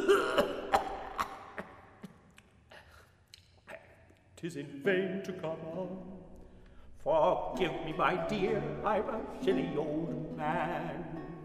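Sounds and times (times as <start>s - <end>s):
weak old man coughing in bed: 0.0s - 2.2s
speech: 4.4s - 6.3s, 7.0s - 11.4s.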